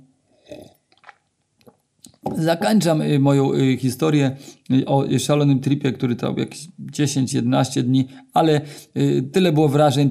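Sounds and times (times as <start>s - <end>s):
person sipping a drink: 0.4s - 2.2s
soft wet swallowing and mouth sounds: 0.5s - 2.3s
speech: 2.3s - 10.0s.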